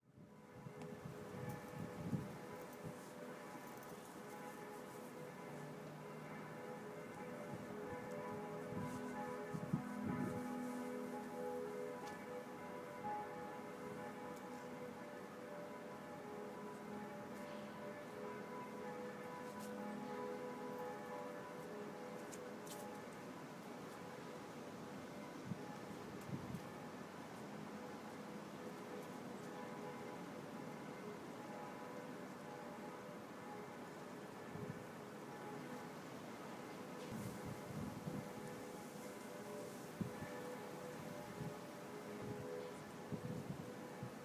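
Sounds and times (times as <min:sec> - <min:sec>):
traditional ship bells: 0:00.0 - 0:44.2.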